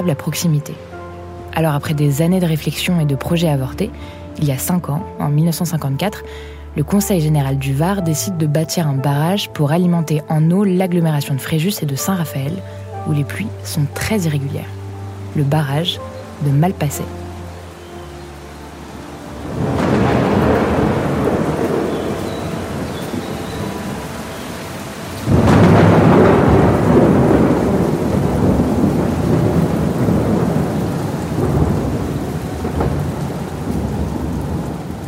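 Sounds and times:
speech: 0:00.0 - 0:00.9, 0:01.5 - 0:17.2
heavy rain in a violent easterly storm in the Var region of France: 0:00.0 - 0:09.5, 0:11.0 - 0:35.0
thunder rumbling: 0:19.3 - 0:35.0.

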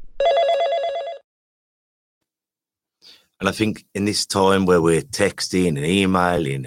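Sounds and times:
telephone ringing: 0:00.2 - 0:01.2
speech: 0:03.4 - 0:06.6.

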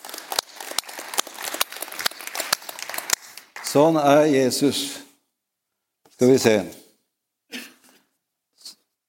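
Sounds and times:
audience applauding: 0:00.0 - 0:04.3
speech: 0:03.7 - 0:05.0, 0:06.2 - 0:06.8.

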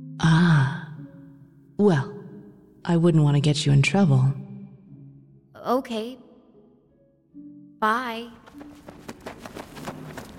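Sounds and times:
speech: 0:01.8 - 0:02.1, 0:02.8 - 0:04.4, 0:05.6 - 0:06.2, 0:07.8 - 0:08.4
footsteps of someone running along a hard hallway floor: 0:08.4 - 0:10.3.

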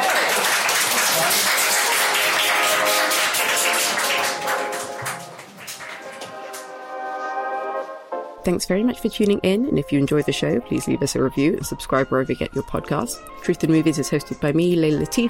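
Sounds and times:
audience applause: 0:00.0 - 0:06.8
sustained musical tones: 0:01.6 - 0:14.7
speech: 0:08.4 - 0:15.2.

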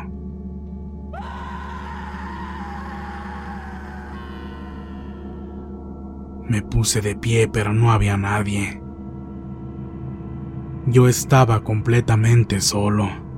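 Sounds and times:
steady low droning hum: 0:00.0 - 0:11.0
person screaming for help inside a station: 0:01.2 - 0:05.3
speech: 0:06.5 - 0:08.8, 0:10.9 - 0:13.2.

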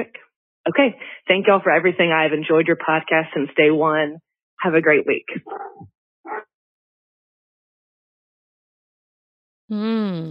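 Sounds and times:
speech: 0:00.0 - 0:05.9, 0:09.7 - 0:10.2
dog yelping: 0:05.5 - 0:06.4.

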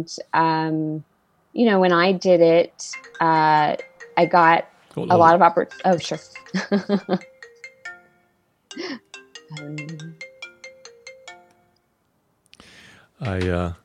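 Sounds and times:
speech: 0:00.0 - 0:07.3, 0:08.8 - 0:10.2, 0:13.2 - 0:13.8
mobile phone ringtone with bright rapid electronic melody: 0:02.9 - 0:11.8
man murmuring: 0:05.0 - 0:05.4, 0:13.2 - 0:13.8
man laughing: 0:05.1 - 0:05.3, 0:06.6 - 0:07.2, 0:13.2 - 0:13.7.

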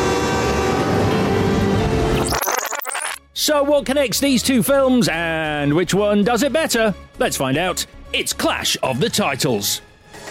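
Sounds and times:
train horn tones: 0:00.0 - 0:01.9
speech: 0:03.4 - 0:09.9.

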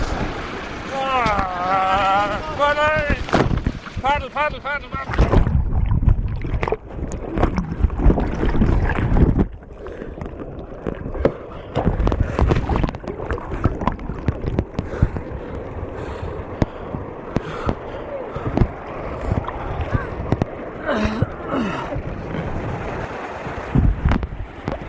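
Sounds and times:
rushing water at a weir: 0:00.0 - 0:24.8
wind buffeting the microphone: 0:00.0 - 0:24.8
paddler crying out: 0:00.9 - 0:02.5.

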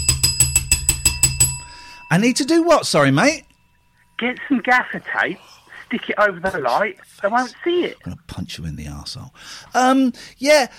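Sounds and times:
bell ringing rapidly: 0:00.0 - 0:04.9
speech: 0:02.1 - 0:03.5, 0:04.2 - 0:10.7.

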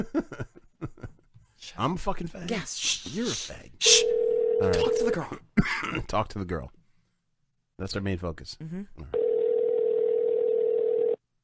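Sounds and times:
speech: 0:00.0 - 0:00.5, 0:01.7 - 0:04.0, 0:04.6 - 0:06.8, 0:07.8 - 0:09.2
telephone ringing tone: 0:04.0 - 0:05.0, 0:09.2 - 0:11.2.

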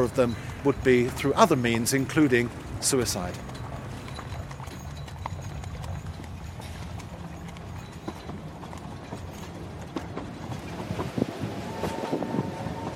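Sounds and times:
speech: 0:00.0 - 0:03.5
train wheels knocking over the tracks: 0:00.0 - 0:12.9
old train rumbling past: 0:06.6 - 0:12.9.

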